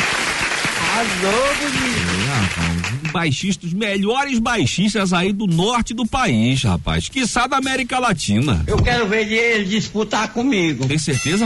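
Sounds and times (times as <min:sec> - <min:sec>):
applause: 0:00.0 - 0:03.2
speech: 0:01.0 - 0:11.4.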